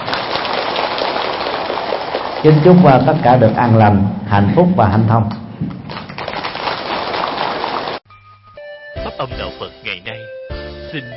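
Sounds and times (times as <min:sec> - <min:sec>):
large audience applauding at a Buddhist dharma talk: 0:00.0 - 0:02.5, 0:06.2 - 0:08.0
speech: 0:02.4 - 0:05.4, 0:11.0 - 0:11.1.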